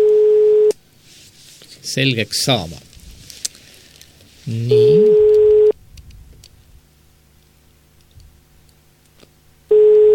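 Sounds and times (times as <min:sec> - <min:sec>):
telephone ringback tone over the line: 0:00.0 - 0:00.7, 0:04.7 - 0:05.8, 0:09.7 - 0:10.1
speech: 0:02.0 - 0:02.9, 0:04.5 - 0:05.2.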